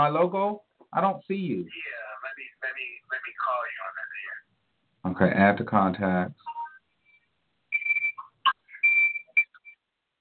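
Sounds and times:
speech: 0:00.0 - 0:04.0, 0:05.0 - 0:06.4
high electronic beeps and chirps: 0:06.5 - 0:09.8.

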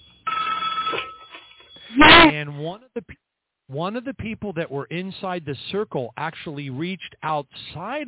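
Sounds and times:
old-fashioned telephone bell ringing: 0:00.0 - 0:02.3
speech: 0:02.3 - 0:08.0.

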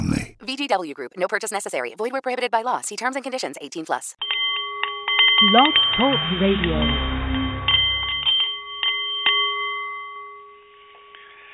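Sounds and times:
speech: 0:00.5 - 0:04.5, 0:05.4 - 0:07.2
Nepalese meditation bowl chiming: 0:04.2 - 0:11.5.

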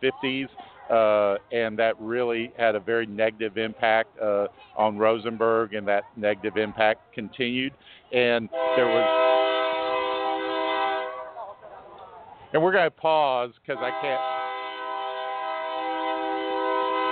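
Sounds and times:
speech: 0:00.0 - 0:09.4, 0:12.5 - 0:14.3
freight train horn of an oil or sand train in Rosenberg: 0:08.5 - 0:11.4, 0:13.8 - 0:17.1.

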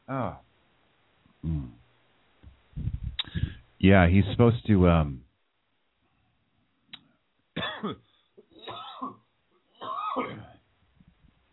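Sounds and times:
speech: 0:00.1 - 0:00.5, 0:03.8 - 0:05.2
faint rumble: 0:02.5 - 0:04.7
throat clearing and coughing: 0:07.6 - 0:10.6.

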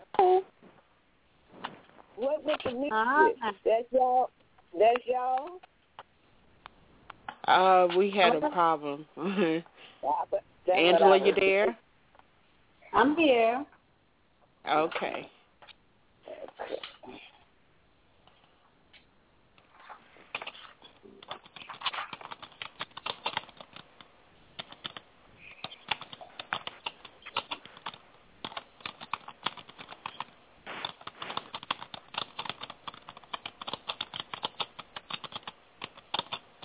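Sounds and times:
speech: 0:02.2 - 0:05.7, 0:07.5 - 0:11.8, 0:12.9 - 0:13.7, 0:14.6 - 0:15.4
typing on a keyboard: 0:20.3 - 0:36.6.

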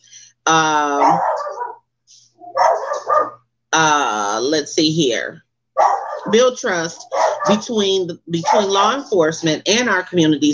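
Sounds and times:
speech: 0:00.5 - 0:01.3, 0:03.8 - 0:05.4, 0:06.3 - 0:10.5
dog barking loudly: 0:01.0 - 0:01.8, 0:02.4 - 0:03.4, 0:05.8 - 0:06.4, 0:07.0 - 0:07.7, 0:08.4 - 0:09.0.

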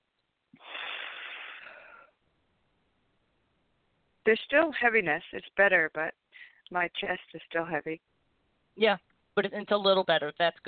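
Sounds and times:
person taking a long airy wheezy breath: 0:00.6 - 0:02.2
speech: 0:04.2 - 0:08.1, 0:08.8 - 0:10.6.

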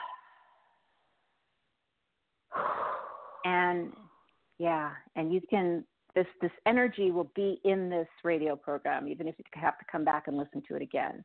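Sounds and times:
deep breath during a guided relaxation exercise: 0:02.5 - 0:03.5
speech: 0:03.4 - 0:04.0, 0:04.6 - 0:11.2.

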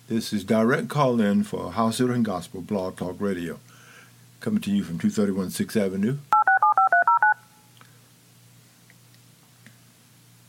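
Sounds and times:
faint hum: 0:00.0 - 0:10.4
speech: 0:00.1 - 0:03.7, 0:04.4 - 0:06.4
telephone keypad DTMF tones dialing a call: 0:06.4 - 0:07.4.

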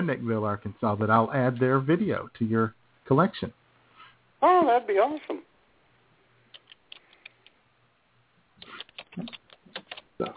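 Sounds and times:
speech: 0:00.0 - 0:03.6, 0:04.4 - 0:05.5, 0:09.2 - 0:09.4, 0:10.2 - 0:10.3
low hum: 0:00.0 - 0:10.3
computer keyboard typing: 0:08.6 - 0:10.3.

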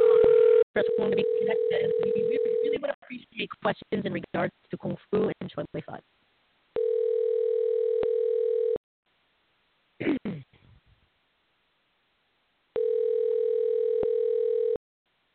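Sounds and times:
steady buzzy telephone dial tone: 0:00.0 - 0:02.7, 0:06.8 - 0:08.8, 0:12.8 - 0:14.8
speech: 0:01.0 - 0:06.2
person clearing throat: 0:10.0 - 0:10.6.

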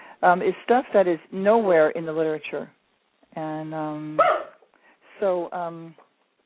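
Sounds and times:
speech: 0:00.2 - 0:02.8, 0:03.4 - 0:04.5, 0:05.2 - 0:06.0
dog barking: 0:04.2 - 0:04.6.

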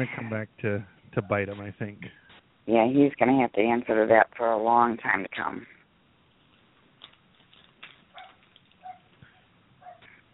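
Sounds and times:
speech: 0:00.0 - 0:05.8
dog barking in short sharp yaps: 0:01.2 - 0:01.6, 0:08.1 - 0:10.3.

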